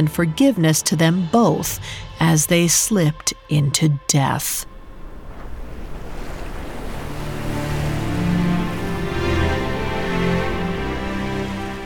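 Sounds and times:
speech: 0.0 - 4.7
low rumble of open water: 4.6 - 11.8
soft sea waves lapping: 4.6 - 11.8.

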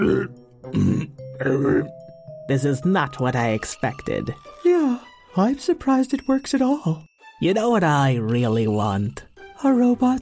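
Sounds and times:
comic robotic burping sound effect from a walking robot: 0.0 - 2.0
speech: 0.0 - 4.6, 5.4 - 10.2.

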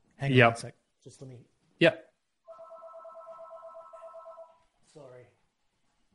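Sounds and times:
speech: 0.2 - 2.1
landline telephone ringing with a trilling electronic tone: 2.5 - 4.6.

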